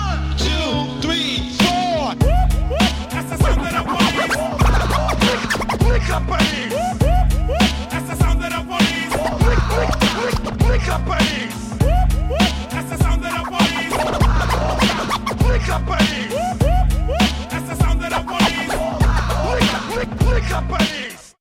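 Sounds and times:
steady heavy bass beat: 0.0 - 21.2
remixed hip-hop track with French rap vocals: 0.0 - 21.4
sharp DJ turntable scratches: 2.8 - 6.7, 8.4 - 11.4, 12.4 - 16.4, 17.2 - 21.2.

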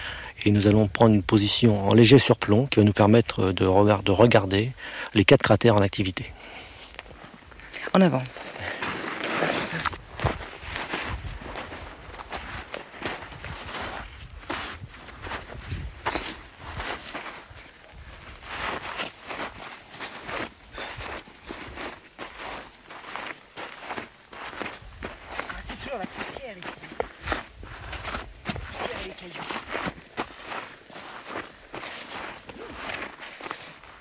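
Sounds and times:
faint breeze: 0.0 - 33.9
speech: 0.4 - 6.6, 7.9 - 8.8
footsteps climbing over loose volcanic rock and black gritty dust on a volcano: 8.2 - 33.9.

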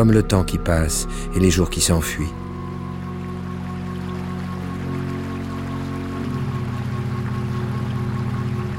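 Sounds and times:
speech: 0.0 - 2.5
flowing river water rushing: 0.0 - 8.7
low sustained musical drone: 0.0 - 8.7.

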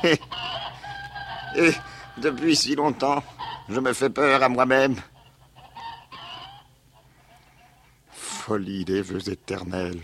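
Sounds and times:
speech: 0.0 - 0.6, 1.5 - 5.1, 8.5 - 10.0
chickens clucking: 0.0 - 8.2.

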